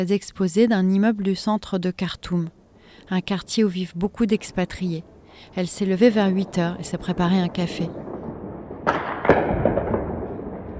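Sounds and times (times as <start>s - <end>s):
speech: 0.0s - 8.2s
explosions heard from a city apartment: 7.5s - 10.7s.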